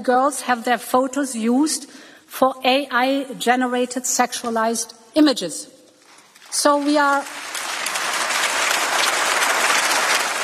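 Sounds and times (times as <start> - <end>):
speech: 0.0 - 5.7, 6.5 - 7.6
audience applause: 6.8 - 10.4.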